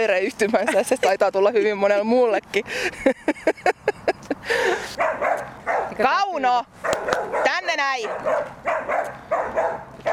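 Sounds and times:
speech: 0.0s - 10.1s
laughter: 2.7s - 4.8s
small dog barking: 5.0s - 6.0s, 6.8s - 10.1s.

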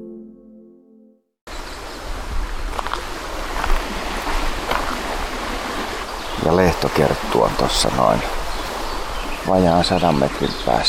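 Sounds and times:
water rushing over small river rapids: 2.0s - 10.8s
speech: 7.0s - 8.4s, 9.4s - 10.8s.

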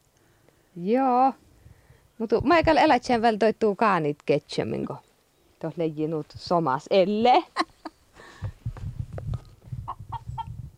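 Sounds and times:
speech: 0.8s - 1.4s, 2.2s - 7.7s
rooster clucking: 9.9s - 10.6s.

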